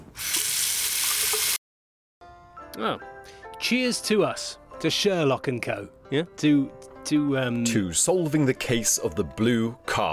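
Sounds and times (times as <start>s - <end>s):
water running at a sink for handwashing: 0.1s - 1.6s
speech: 2.8s - 10.1s.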